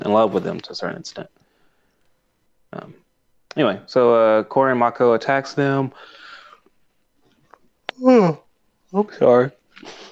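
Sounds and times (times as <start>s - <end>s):
speech: 0.1s - 1.4s, 2.7s - 3.0s, 3.6s - 6.2s, 8.0s - 10.1s
big breathy yawn: 7.9s - 8.5s.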